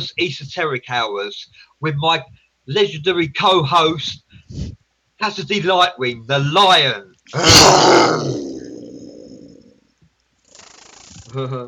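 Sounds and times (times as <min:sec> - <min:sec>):
speech: 0:00.0 - 0:08.5, 0:11.3 - 0:11.6
loud aggressive roar: 0:07.4 - 0:09.7.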